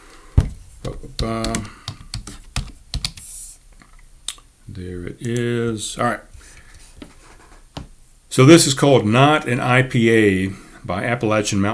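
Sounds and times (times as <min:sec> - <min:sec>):
speech: 0:00.8 - 0:02.0, 0:04.8 - 0:06.6, 0:08.4 - 0:11.7
typing on a computer keyboard: 0:00.8 - 0:03.3.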